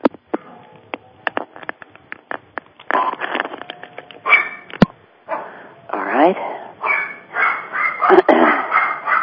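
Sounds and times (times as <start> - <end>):
puppies barking heard through a phone line: 4.2 - 4.7, 6.8 - 9.2
speech: 6.3 - 6.5.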